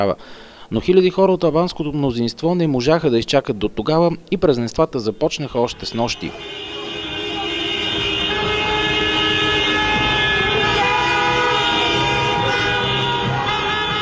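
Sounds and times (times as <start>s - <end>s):
speech: 0.0s - 6.7s
street traffic noise: 0.0s - 14.0s
crowd noise in the streets: 5.1s - 14.0s
hundreds of car horns honking in the streets during independence celebrations: 5.2s - 14.0s.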